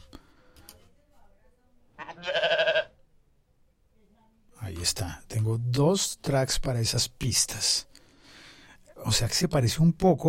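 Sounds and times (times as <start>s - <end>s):
sheep bleating: 2.0s - 3.0s
speech: 4.8s - 7.9s, 9.0s - 10.2s.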